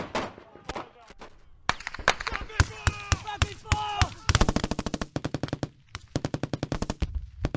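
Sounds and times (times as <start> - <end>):
rapid gunfire from an infantry section: 1.8 - 7.5.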